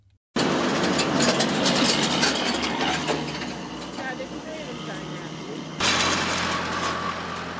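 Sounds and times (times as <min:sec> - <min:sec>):
heavy tractor engine droning while digging ground for planting seeds: 0:00.0 - 0:07.5
clanking, grinding mechanical noises of a digging tractor: 0:00.4 - 0:04.7, 0:05.8 - 0:07.5
trucks passing with a rumble: 0:00.4 - 0:07.5.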